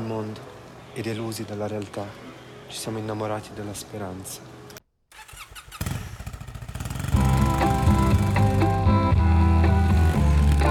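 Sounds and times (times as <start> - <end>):
speech: 0.1 - 4.6
motorcycle engine roaring: 5.1 - 10.7.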